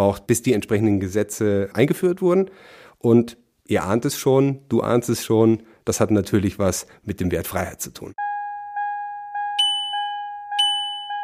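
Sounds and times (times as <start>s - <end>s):
speech: 0.0s - 8.2s
car seatbelt warning two-tone electronic chime: 8.8s - 11.2s.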